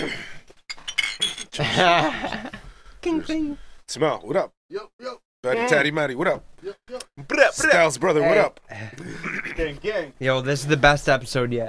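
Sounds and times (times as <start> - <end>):
glasses clinking in a toast: 0.7 - 1.7
speech: 1.6 - 11.6.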